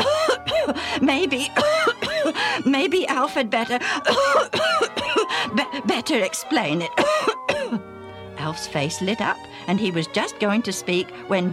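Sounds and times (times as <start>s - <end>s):
voice acting out a man's coughs and throat clearing: 0.0s - 0.9s, 1.6s - 2.4s, 4.0s - 5.3s, 7.0s - 7.8s
speech: 1.0s - 7.8s, 8.4s - 11.5s.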